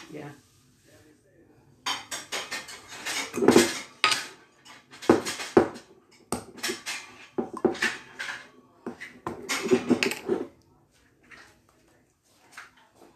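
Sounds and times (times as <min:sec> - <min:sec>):
measuring spoons and cups clattering while preparing a Trinidadian black cake: 0:01.8 - 0:10.5.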